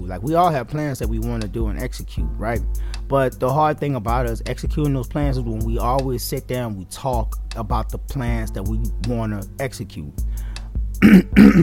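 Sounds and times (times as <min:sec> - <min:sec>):
speech: 0:00.1 - 0:11.6
man clearing his throat: 0:11.0 - 0:11.6.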